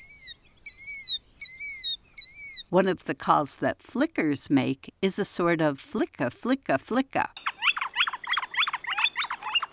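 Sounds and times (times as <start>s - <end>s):
killdeer calling: 0.0s - 2.7s, 7.4s - 9.7s
speech: 2.7s - 7.5s.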